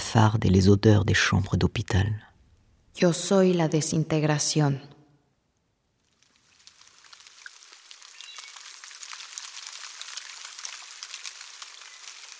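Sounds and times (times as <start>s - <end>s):
speech: 0.1s - 2.3s, 3.0s - 5.0s
rain of the rainy season falling: 6.0s - 12.3s.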